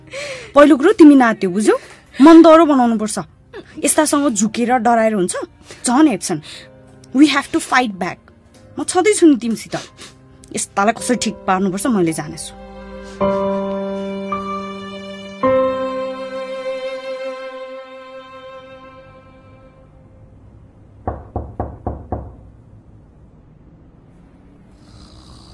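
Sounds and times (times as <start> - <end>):
speech: 0.5 - 13.6
sustained musical tones: 11.0 - 21.0
late-night knocking on a door: 21.0 - 22.5.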